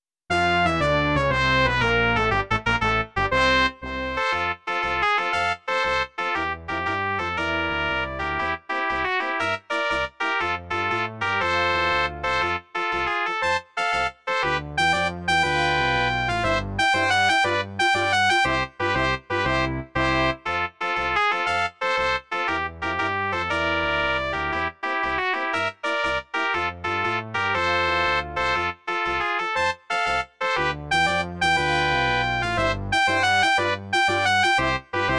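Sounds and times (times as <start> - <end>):
brass quintet playing a march: 0.3 - 35.1.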